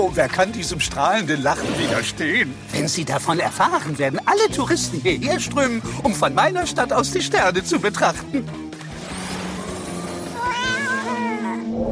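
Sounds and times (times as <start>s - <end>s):
speech: 0.0s - 8.6s
kittens meowing in a moving cat basket: 10.3s - 11.7s.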